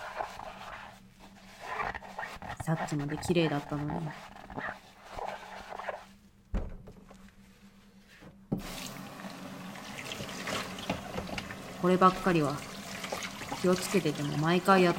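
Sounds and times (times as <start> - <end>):
washing plastic food containers with greasy oil stains: 0.0 - 6.2, 8.6 - 14.9
speech: 2.7 - 4.8, 11.8 - 12.7, 13.6 - 14.9
tap water running at a sink: 8.6 - 14.9.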